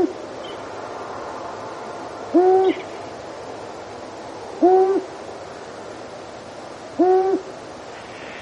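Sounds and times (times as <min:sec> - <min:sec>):
long-eared owl giving deep even hoots: 0:00.0 - 0:00.6, 0:02.3 - 0:02.9, 0:04.6 - 0:05.1, 0:06.9 - 0:08.3
background hiss: 0:00.0 - 0:08.3.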